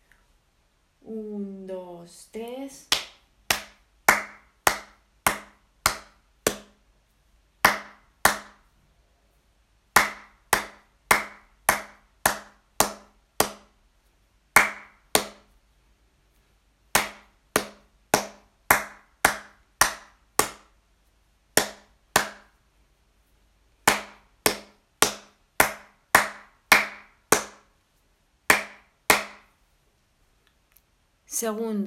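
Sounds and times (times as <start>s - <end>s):
speech: 2.1s - 2.9s, 31.3s - 31.8s
rhythmic hand clapping: 2.9s - 6.8s, 7.6s - 8.7s, 9.9s - 13.8s, 14.6s - 15.5s, 16.9s - 20.8s, 21.6s - 22.5s, 23.8s - 27.7s, 28.5s - 29.5s.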